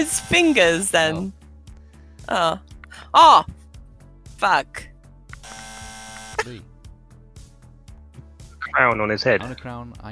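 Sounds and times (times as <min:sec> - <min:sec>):
quiz buzzer with bright electronic buzz: 0:00.0 - 0:01.1, 0:05.4 - 0:06.5
speech: 0:00.0 - 0:01.4, 0:02.3 - 0:03.6, 0:04.4 - 0:04.9, 0:06.4 - 0:06.7, 0:08.7 - 0:10.0.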